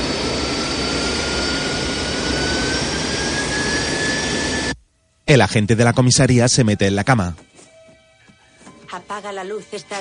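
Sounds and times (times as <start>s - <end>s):
airplane jet engines powering up for takeoff: 0.0s - 4.8s
faint rising jet engine whine: 0.0s - 5.9s
speech: 5.3s - 7.5s, 9.2s - 9.9s.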